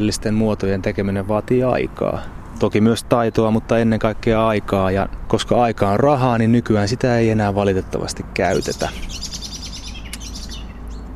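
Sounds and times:
speech: 0:00.0 - 0:09.3
steady low outdoor rumble: 0:00.0 - 0:11.1
common blackbird calling in quick repeated chirping notes: 0:08.4 - 0:11.1.

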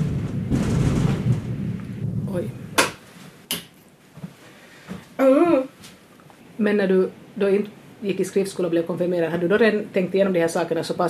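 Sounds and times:
rolling rumble of thunder during a thunderstorm: 0:00.0 - 0:02.9
faint hiss of rain-like noise: 0:00.0 - 0:11.0
speech: 0:02.4 - 0:02.6, 0:06.6 - 0:11.0.

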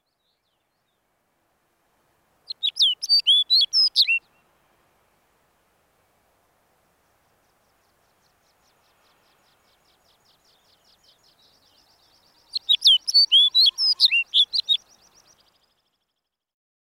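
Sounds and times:
male Snow Bunting singing in a boulder field: 0:02.0 - 0:06.7, 0:08.5 - 0:16.1.

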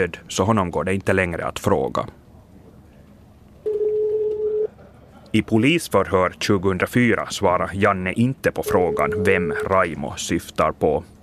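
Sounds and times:
speech: 0:00.0 - 0:02.2, 0:05.3 - 0:11.2
faint low hum: 0:00.0 - 0:11.2
steady telephone tone: 0:03.6 - 0:04.7, 0:08.6 - 0:09.7.

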